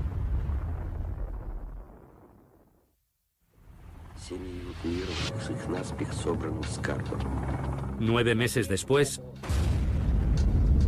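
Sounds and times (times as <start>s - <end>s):
hydrogen bomb explosion: 0.0s - 2.8s, 9.4s - 10.8s
speech: 4.3s - 9.6s.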